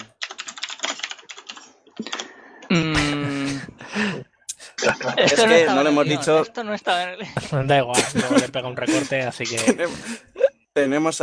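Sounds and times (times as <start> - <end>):
fingers typing on a computer keyboard: 0.0 - 2.3
laughter: 2.8 - 10.5
speech: 4.9 - 11.2.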